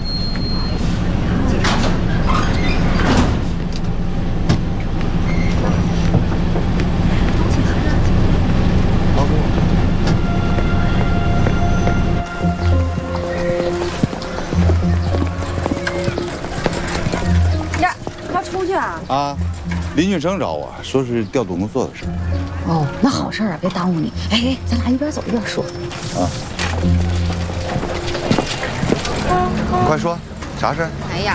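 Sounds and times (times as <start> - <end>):
train pulling into a station: 0.0 - 31.3
speech: 20.0 - 27.0, 29.3 - 31.3.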